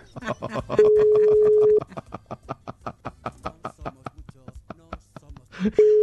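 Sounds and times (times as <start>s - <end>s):
people talking: 0.0s - 1.4s, 3.3s - 6.0s
laughter: 0.0s - 6.0s
unanswered WhatsApp call ringback tone: 0.8s - 1.9s, 5.8s - 6.0s.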